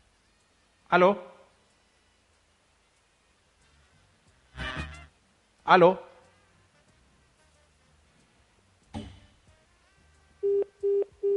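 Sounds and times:
speech: 0.9 - 1.3, 5.7 - 6.1
telephone line beeps during a call: 10.4 - 11.3.

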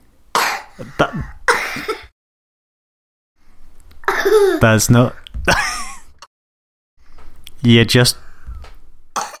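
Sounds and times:
child coughing deliberately: 0.4 - 2.1, 4.0 - 4.6, 9.2 - 9.3
speech: 0.8 - 2.1, 4.2 - 5.7, 7.6 - 8.2.

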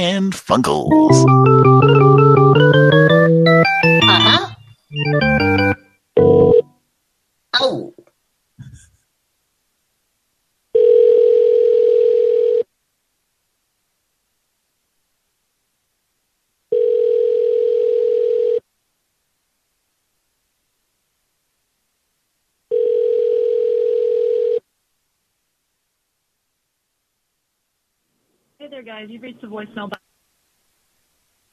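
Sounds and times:
brief recorded voicemail voice: 0.0 - 1.4, 4.0 - 4.7, 7.6 - 8.0, 28.6 - 30.0
speech: 0.0 - 1.7, 29.0 - 30.0
telephone ringback tone of a call ringing toward voicemail: 1.0 - 6.7, 10.8 - 12.6, 16.7 - 18.6, 22.7 - 24.6.

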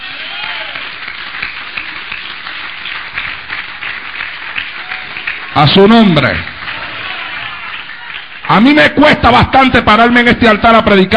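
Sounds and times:
congregation applauding during a church service: 0.0 - 10.6
speech: 5.6 - 6.5, 8.5 - 11.1.

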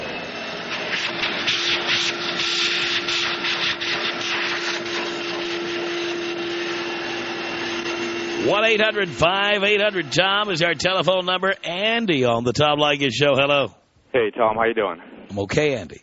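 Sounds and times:
vacuum cleaner running: 0.0 - 11.6
speech: 8.5 - 16.0.

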